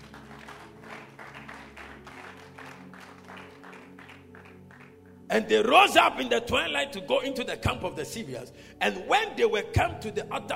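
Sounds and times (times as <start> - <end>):
audience clapping hands in rhythm: 0.0 - 5.3
sustained organ or keyboard music: 0.0 - 10.5
speech: 5.3 - 10.5.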